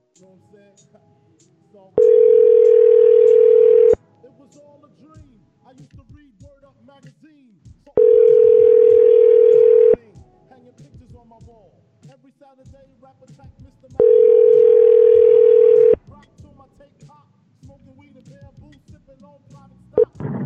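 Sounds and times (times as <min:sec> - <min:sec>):
telephone ringback tone through a phone line: 0:02.0 - 0:04.0, 0:08.0 - 0:10.0, 0:14.0 - 0:16.0.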